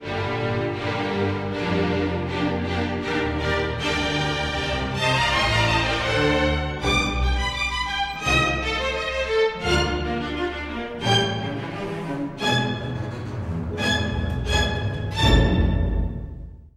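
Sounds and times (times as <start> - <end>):
strings: 0.0 - 16.7.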